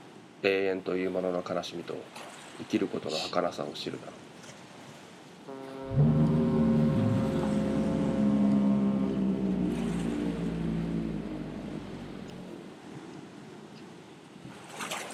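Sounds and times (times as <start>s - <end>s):
speech: 0.4s - 4.3s
lighthouse foghorn blast over the sea: 5.5s - 12.6s.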